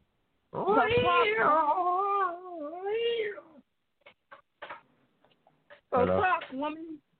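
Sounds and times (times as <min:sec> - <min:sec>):
cat yowling in a cat fight: 0:00.6 - 0:03.6
speech: 0:00.8 - 0:01.9, 0:06.0 - 0:07.0.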